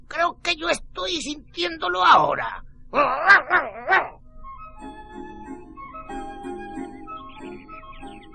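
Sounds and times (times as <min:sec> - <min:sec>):
speech: 0:00.4 - 0:04.1
dog barking: 0:03.3 - 0:04.2
soft steady musical background: 0:04.2 - 0:08.3.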